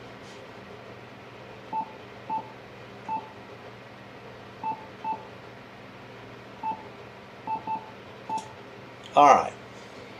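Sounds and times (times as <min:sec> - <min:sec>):
keypad beeps entering frequency on HF radio: 0:01.7 - 0:02.5, 0:04.6 - 0:05.2, 0:06.6 - 0:06.8, 0:07.5 - 0:08.5
speech: 0:09.2 - 0:09.6.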